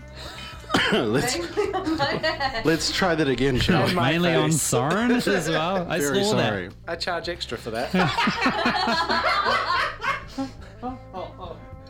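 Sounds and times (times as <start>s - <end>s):
person coughing: 0.7s - 1.2s
laughter: 0.8s - 6.2s, 7.8s - 11.6s
speech: 0.9s - 9.7s.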